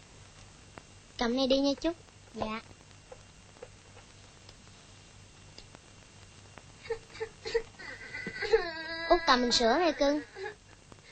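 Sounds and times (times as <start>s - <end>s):
speech: 1.2s - 2.8s, 9.3s - 10.3s
young child crying: 6.8s - 10.6s.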